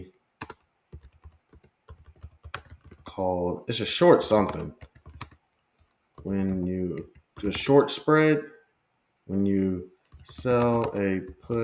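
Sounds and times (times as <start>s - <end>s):
rapid typing on a computer keyboard: 0.4s - 3.1s, 4.3s - 7.7s, 10.0s - 11.6s
speech: 3.2s - 4.9s, 6.2s - 8.5s, 9.3s - 11.6s.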